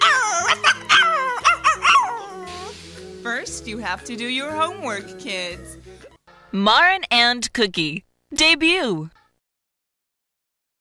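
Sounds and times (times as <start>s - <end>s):
dog barking in high whiny yips and yelps: 0.0s - 2.7s
speech: 3.6s - 5.8s, 6.5s - 9.2s.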